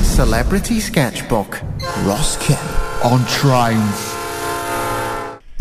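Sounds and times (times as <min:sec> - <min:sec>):
speech: 0:00.2 - 0:04.2
train horn on a busy railway line: 0:01.8 - 0:05.4.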